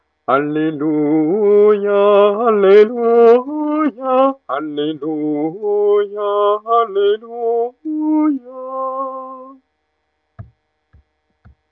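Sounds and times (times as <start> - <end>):
tenor singing an Alleluia at a wedding: 0.3 - 9.6.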